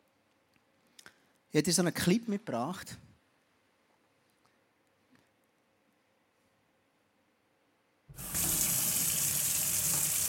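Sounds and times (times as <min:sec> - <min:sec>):
speech: 0:01.5 - 0:03.0
water running loudly from a tap: 0:08.2 - 0:10.2.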